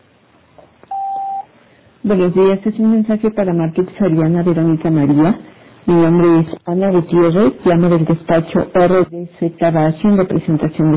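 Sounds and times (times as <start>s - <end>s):
voicemail beep tone: 0.9s - 1.5s
speech: 2.0s - 10.9s.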